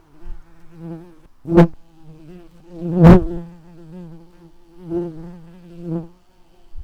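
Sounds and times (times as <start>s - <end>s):
red-tailed bumblebee Lapidarius worker buzzing: 0.0s - 6.8s.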